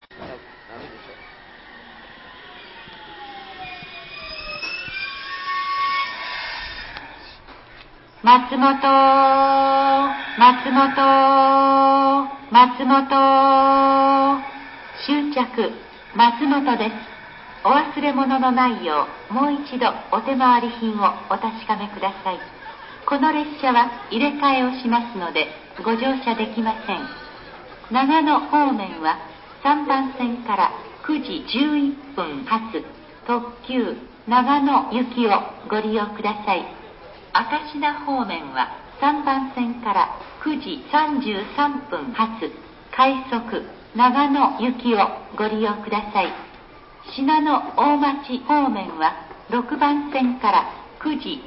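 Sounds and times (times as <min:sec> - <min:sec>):
train arriving: 0:00.0 - 0:51.0.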